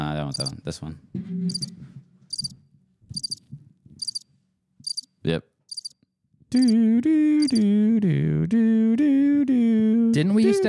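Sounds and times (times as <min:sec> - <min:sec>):
cricket chirping: 0:00.3 - 0:00.5, 0:01.5 - 0:02.6, 0:03.2 - 0:03.4, 0:04.0 - 0:05.1, 0:05.7 - 0:06.0, 0:06.6 - 0:06.8, 0:07.4 - 0:07.6
speech: 0:00.3 - 0:02.4, 0:05.2 - 0:05.5, 0:06.5 - 0:10.6
low thumping noise: 0:01.1 - 0:03.8.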